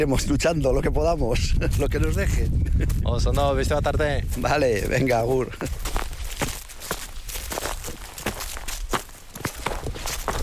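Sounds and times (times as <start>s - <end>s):
speech: 0.0s - 5.8s
footsteps of hikers climbing a mountain: 1.6s - 10.4s.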